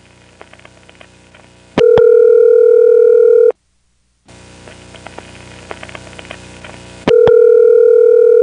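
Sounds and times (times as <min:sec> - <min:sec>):
steady telephone line tone: 0:01.8 - 0:03.6, 0:07.1 - 0:08.4.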